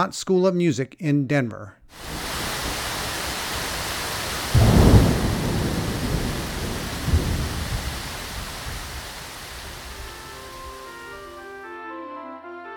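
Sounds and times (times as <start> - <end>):
speech: 0.0 - 2.2
steady rain hissing: 1.9 - 11.6
deep roll of thunder rumbling: 2.0 - 11.5.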